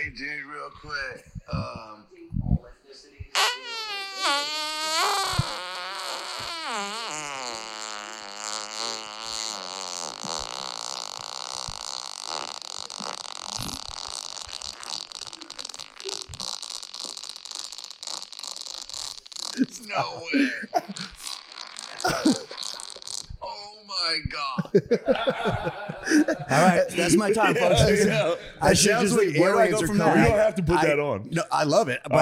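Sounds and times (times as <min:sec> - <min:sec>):
speech: 0:00.0 - 0:03.7, 0:26.5 - 0:32.2
very long crackling fart: 0:03.4 - 0:23.4
laughter: 0:19.6 - 0:21.3, 0:22.0 - 0:22.9, 0:24.4 - 0:30.8.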